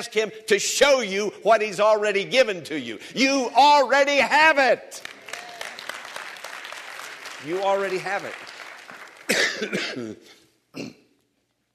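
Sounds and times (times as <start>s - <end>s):
speech: 0.0s - 5.2s, 7.4s - 8.5s, 9.3s - 11.0s
person coughing: 9.3s - 11.1s.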